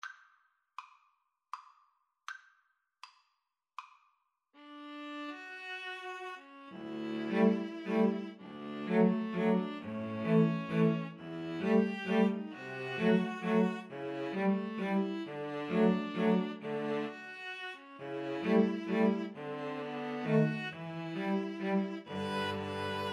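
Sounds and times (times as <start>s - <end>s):
string trio playing a waltz: 6.2s - 23.1s.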